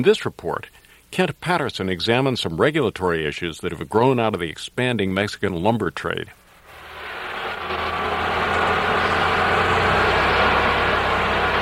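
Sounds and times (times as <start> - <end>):
speech: 0.0 - 6.4
forklift engine running while loading lumber onto a truck: 6.6 - 11.6.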